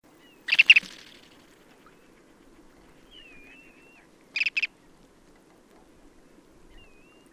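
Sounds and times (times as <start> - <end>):
ruddy turnstone Arenaria interpres calling: 0.2 - 1.6, 3.1 - 4.7.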